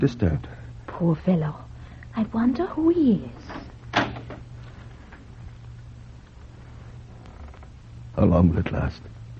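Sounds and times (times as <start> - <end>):
speech: 0.0 - 3.7, 8.2 - 9.2
steady low hum: 0.0 - 9.3
door shutting thud: 3.6 - 4.4.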